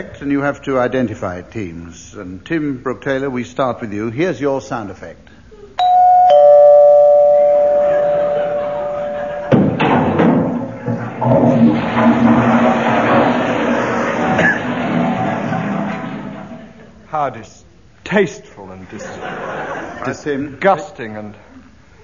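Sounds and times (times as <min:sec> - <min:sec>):
speech: 0:00.0 - 0:05.4, 0:17.2 - 0:21.5
doorbell ringing with a sustained chime: 0:05.8 - 0:09.5
laughter: 0:07.4 - 0:17.1, 0:18.8 - 0:20.7
busy jumble of clattering noise: 0:08.6 - 0:17.0.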